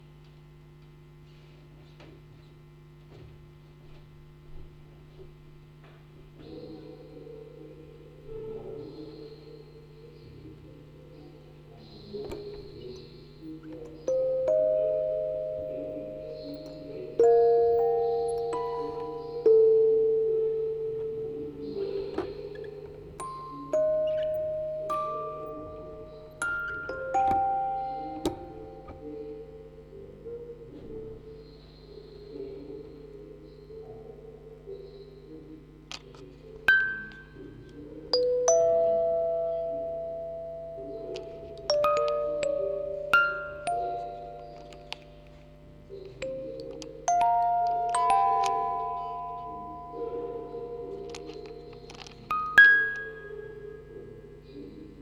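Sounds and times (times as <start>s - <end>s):
four music boxes playing: 11.8s - 31.4s, 35.9s - 55.0s.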